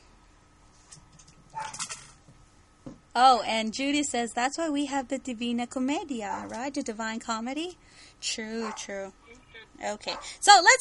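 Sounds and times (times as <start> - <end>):
dogs yipping and barking: 1.5 - 1.9, 6.3 - 6.6, 8.6 - 8.9
speech: 3.2 - 9.2, 9.8 - 10.7.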